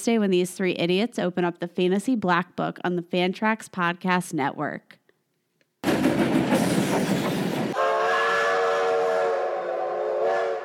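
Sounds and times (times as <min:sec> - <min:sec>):
speech: 0:00.0 - 0:05.0
train rushing in with a loud broad rumble: 0:05.8 - 0:09.8
long steady train horn blast: 0:07.8 - 0:10.6.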